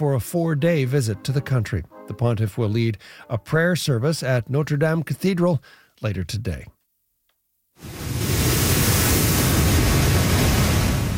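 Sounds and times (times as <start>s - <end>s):
speech: 0.0s - 6.8s
Category 4 hurricane waves crashing into beach homes in southwestern Mexico: 7.8s - 11.1s.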